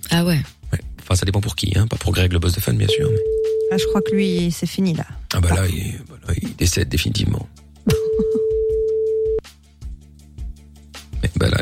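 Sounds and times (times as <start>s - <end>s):
speech: 0.1s - 0.6s, 1.2s - 8.6s
telephone ringback tone beep: 2.9s - 4.4s, 8.2s - 9.4s
laughter: 7.9s - 8.6s.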